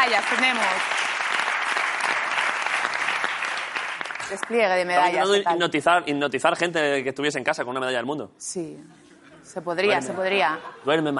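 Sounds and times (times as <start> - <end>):
speech: 0.0 - 1.1, 4.3 - 11.1
crowd applause: 0.0 - 4.6.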